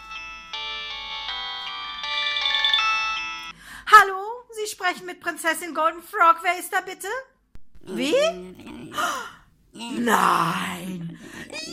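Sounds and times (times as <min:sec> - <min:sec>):
mobile phone ringtone playing a bright electronic melody: 0:00.0 - 0:03.5
speech: 0:04.9 - 0:11.0.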